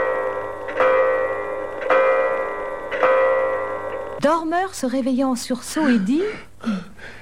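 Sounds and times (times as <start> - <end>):
clock striking the hour: 0.0 - 4.2
speech: 4.2 - 7.1.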